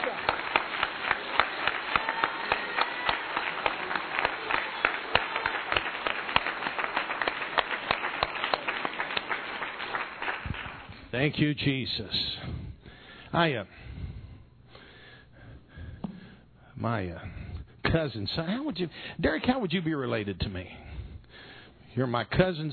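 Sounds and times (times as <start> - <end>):
crowd clapping: 0.0 - 11.0
speech: 11.2 - 12.6, 13.3 - 13.8, 16.8 - 20.8, 22.0 - 22.7.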